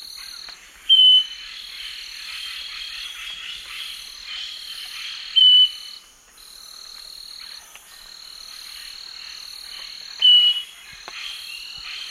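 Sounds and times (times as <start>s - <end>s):
Southern nightingale-wren pure whistle in the Eastern Lowlands of South America: 0.9s - 1.4s, 5.4s - 6.0s, 10.2s - 10.7s.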